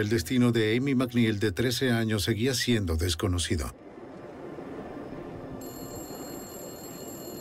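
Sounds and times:
speech: 0.0 - 3.8
dense rumbling noise: 0.0 - 7.3
payphone ringing at a service station: 5.6 - 7.3.

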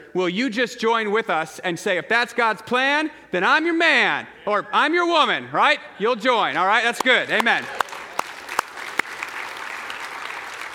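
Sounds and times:
speech: 0.1 - 7.8
congregation clapping in church: 6.7 - 10.7.

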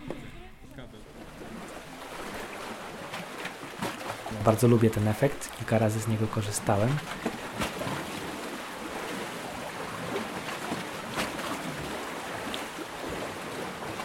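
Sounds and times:
waves splashing against concrete breakwater blocks: 0.0 - 14.0
speech: 4.4 - 7.3.

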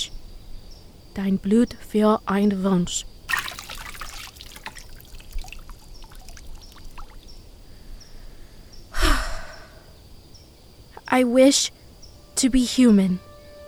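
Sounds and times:
speech: 1.2 - 3.1, 11.2 - 11.8, 12.4 - 13.3
liquid poured into a fountain in short splashy bursts: 3.3 - 7.3
dripping and trickling liquid: 3.3 - 7.5.

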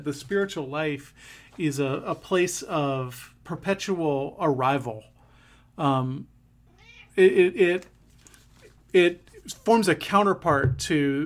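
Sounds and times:
speech: 0.0 - 5.1, 5.8 - 6.3, 7.2 - 8.0, 8.9 - 11.2
pet cat meowing loudly: 6.7 - 7.2.

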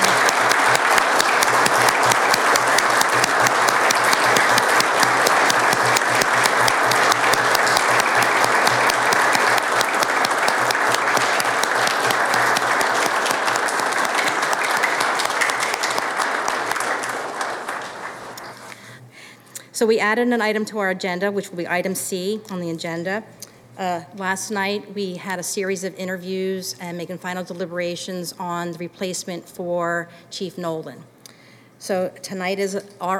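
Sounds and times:
audience applauding: 0.0 - 18.8
speech: 19.8 - 31.1, 31.8 - 33.1.

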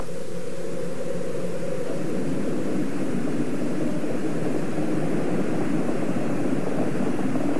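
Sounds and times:
Space Shuttle rocket engines roaring after liftoff: 0.0 - 7.5.

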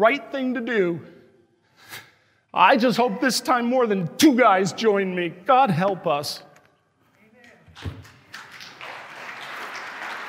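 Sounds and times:
speech: 0.0 - 1.2, 1.8 - 6.5, 7.8 - 8.0
audience applause: 8.0 - 10.2.

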